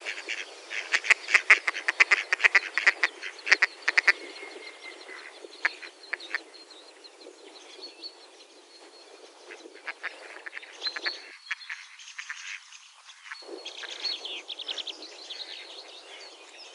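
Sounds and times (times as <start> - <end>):
mallard duck: 0.0 - 4.2, 5.1 - 6.4, 9.5 - 14.0.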